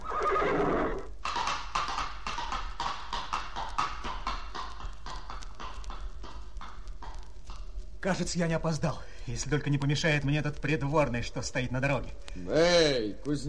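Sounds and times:
horse giving a loud shrill whinny: 0.0 - 1.2
horse hooves clip-clopping: 0.0 - 12.4
speech: 8.0 - 13.4.

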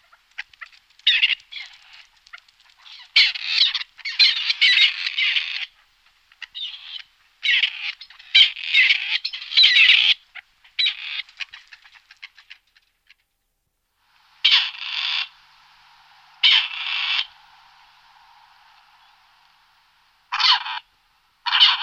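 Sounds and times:
grey partridge Perdix perdix hoarse rasping calls and quick ticking notes: 0.0 - 13.3, 14.3 - 21.8.

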